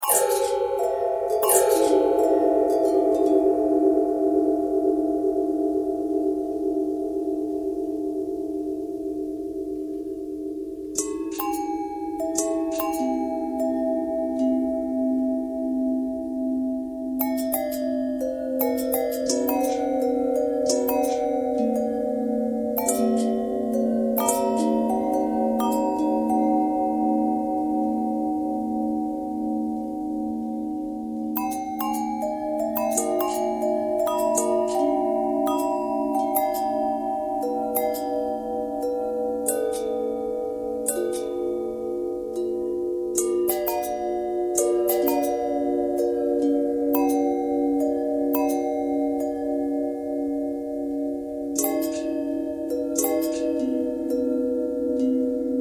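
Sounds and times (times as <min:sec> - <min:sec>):
long bell with bend and twist: 0:00.0 - 0:55.5.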